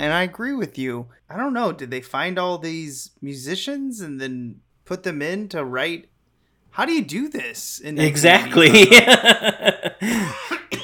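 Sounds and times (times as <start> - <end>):
speech: 0.0 - 6.1, 6.8 - 10.5
laughter: 8.4 - 10.6
short rhythmic coughs: 10.0 - 10.8.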